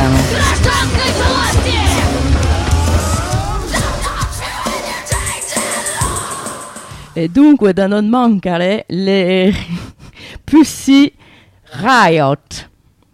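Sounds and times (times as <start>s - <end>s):
group of about 20 people shouting on a snowy rooftop: 0.0s - 6.3s
speech: 7.2s - 12.7s.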